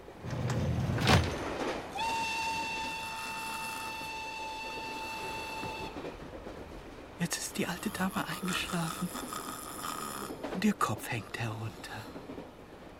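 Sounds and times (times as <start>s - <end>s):
train clattering on rails: 0.0s - 12.9s
long sustained train whistle: 1.9s - 6.4s
speech: 7.6s - 9.5s, 10.6s - 12.2s.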